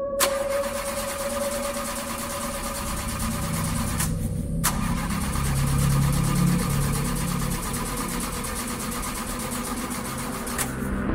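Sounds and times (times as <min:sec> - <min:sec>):
car engine cranking but failing to start: 0:00.2 - 0:11.0.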